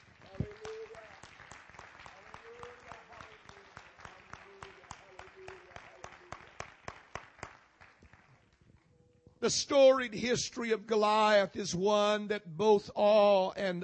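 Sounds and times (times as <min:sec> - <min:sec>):
church audience applauding: 0:00.0 - 0:08.6
speech: 0:09.5 - 0:13.8.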